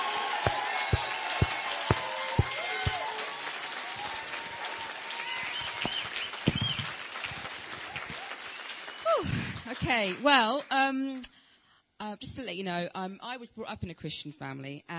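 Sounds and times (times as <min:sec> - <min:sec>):
whistles or cheers: 0:00.0 - 0:09.3
audience applauding: 0:00.0 - 0:10.5
speech: 0:09.9 - 0:11.3, 0:12.0 - 0:14.9.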